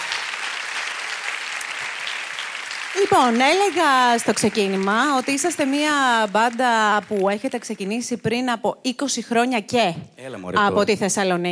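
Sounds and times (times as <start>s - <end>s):
crowd applauding: 0.0s - 8.2s
speech: 3.0s - 11.4s.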